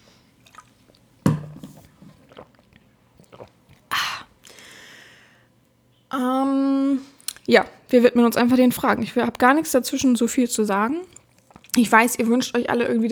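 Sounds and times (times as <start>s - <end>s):
person sipping and swallowing water as a toast: 0.4s - 4.7s
speech: 7.5s - 11.2s, 11.8s - 13.1s.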